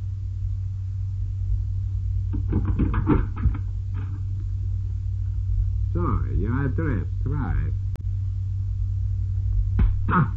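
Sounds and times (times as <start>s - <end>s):
low rumbling hum: 0.0s - 10.3s
someone pounding hard on a door to break it down: 2.3s - 3.6s
speech: 2.6s - 3.7s, 6.0s - 7.9s, 10.1s - 10.3s.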